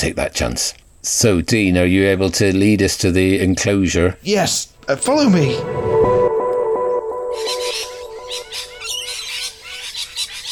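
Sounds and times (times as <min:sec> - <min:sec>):
speech: 0:00.0 - 0:06.1
steady low hum: 0:04.7 - 0:08.5
pigeons squawking and chattering in a pigeon enclosure: 0:07.2 - 0:10.5.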